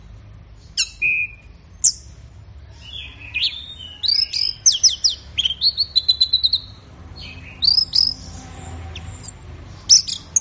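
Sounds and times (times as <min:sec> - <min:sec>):
Orange-headed thrush singing slurs chirpy notes and whistles: 0:02.7 - 0:10.4.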